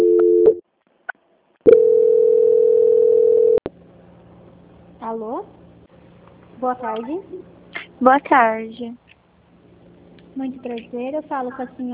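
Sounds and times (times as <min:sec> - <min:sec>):
telephone line tones while a call is transferred: 0:01.7 - 0:03.6
speech: 0:05.1 - 0:05.6, 0:06.6 - 0:09.0, 0:10.4 - 0:11.9.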